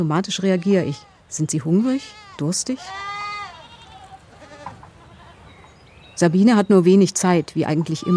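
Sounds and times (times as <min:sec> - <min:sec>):
speech: 0:00.0 - 0:03.1, 0:06.2 - 0:08.1
bottle- and bucket-raised lambs bleating near a house: 0:00.4 - 0:05.5, 0:07.9 - 0:08.1.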